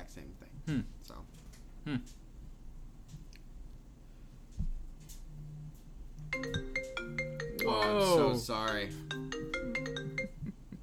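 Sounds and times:
speech: 0.2 - 2.2, 7.9 - 9.0
phone call ringtone playing from a computer: 6.3 - 10.4.

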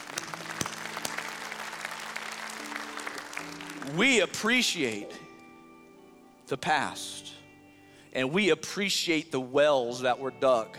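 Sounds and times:
large indoor crowd applauding: 0.0 - 5.2
speech: 3.9 - 5.2, 6.5 - 7.4, 8.1 - 10.7.

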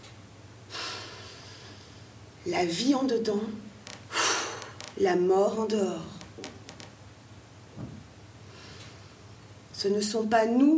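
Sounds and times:
long exhale: 0.7 - 2.0, 4.1 - 4.7
speech: 2.4 - 3.6, 5.0 - 6.5, 9.8 - 10.7.

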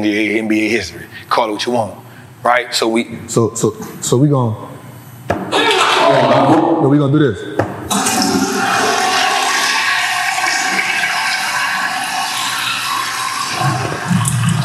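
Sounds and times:
speech: 0.0 - 4.7, 6.1 - 8.1
toilet flushing: 7.9 - 14.6.

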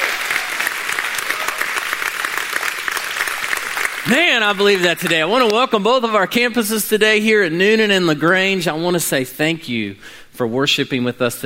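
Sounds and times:
church audience applauding: 0.0 - 5.6
speech: 4.1 - 11.4.

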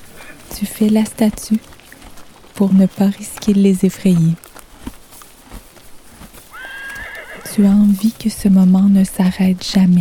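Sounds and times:
horse hooves clopping on the ground: 0.0 - 9.9
speech: 0.6 - 1.7, 2.6 - 4.4, 7.6 - 9.9
horse whinnying: 6.5 - 8.0.

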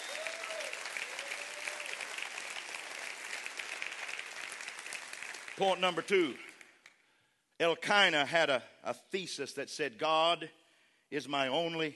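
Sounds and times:
large congregation clapping hands: 0.0 - 7.0
speech: 5.6 - 6.5, 7.6 - 11.9.

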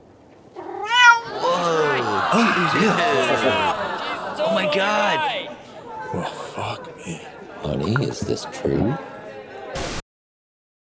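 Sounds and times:
drawn-out rising cat meow: 0.6 - 1.5
laughter: 1.2 - 5.6
speech: 2.3 - 3.8, 4.4 - 9.1.

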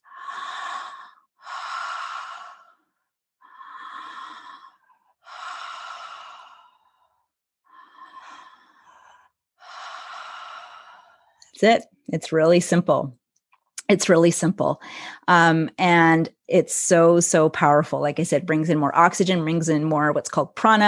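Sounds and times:
relaxed breathing through an open mouth: 0.0 - 11.5
speech: 11.6 - 13.2, 13.9 - 20.8.

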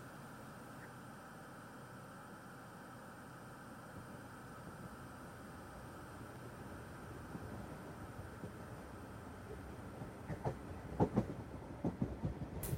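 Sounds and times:
train rumbling along the rails beside the water: 4.0 - 12.7.

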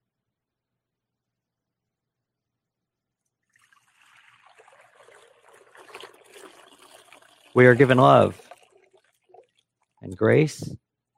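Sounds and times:
water poured during a Christian church service: 3.4 - 10.3
speech: 7.6 - 8.4, 10.1 - 10.8.

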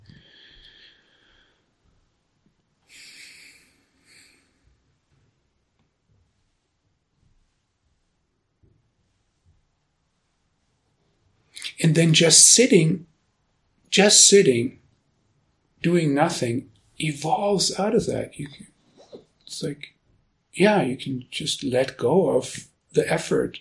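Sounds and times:
person breathing: 0.0 - 1.8, 2.9 - 4.8
faint low rustling: 0.0 - 11.6
speech: 11.8 - 13.1, 13.9 - 14.8, 15.8 - 18.7, 19.5 - 23.5.

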